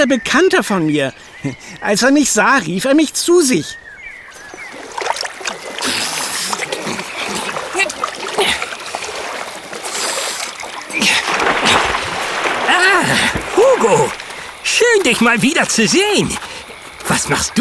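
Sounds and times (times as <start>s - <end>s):
speech: 0.0s - 3.9s, 13.0s - 16.4s, 17.3s - 17.5s
splash of beaver leaping from water: 4.3s - 17.5s.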